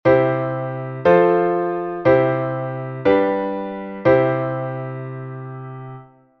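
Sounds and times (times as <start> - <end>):
primary triad chords: 0.1 - 6.1.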